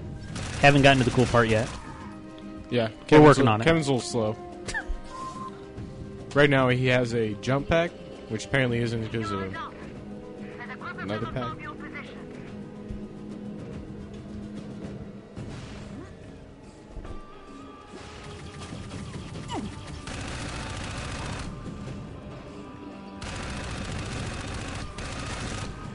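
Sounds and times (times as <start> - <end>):
rapid gunfire from a character shooting in an Xbox 360 video game: 0.3 - 2.0, 18.0 - 21.7, 23.2 - 25.9
speech: 0.6 - 1.8, 2.7 - 4.5, 6.3 - 9.7, 11.1 - 11.7.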